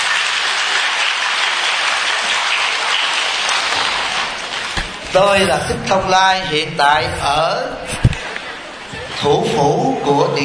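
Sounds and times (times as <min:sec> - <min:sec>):
audience applause in a school hall in San Jose, California: 0:00.0 - 0:05.0
speech: 0:05.2 - 0:08.0, 0:09.2 - 0:10.4.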